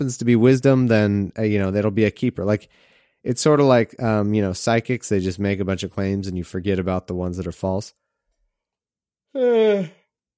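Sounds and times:
speech: 0.0 - 8.0, 9.3 - 10.0
person yawning while getting a drink of water: 9.3 - 10.1.

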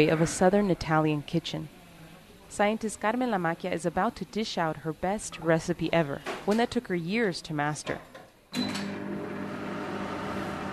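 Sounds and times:
speech: 0.0 - 1.8, 2.5 - 8.8
microwave oven running with wet wheat grains inside in a southern Italian kitchen: 8.6 - 10.7.

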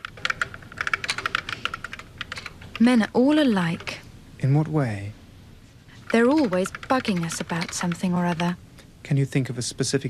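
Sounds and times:
typing on a computer keyboard: 0.0 - 3.0, 6.0 - 8.6
speech: 2.8 - 5.2, 6.1 - 10.0.

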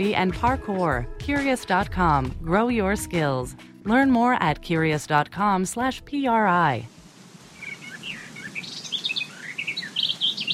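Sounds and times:
speech: 0.0 - 7.0
birds chirping and warbling on a summer day: 7.6 - 10.5.

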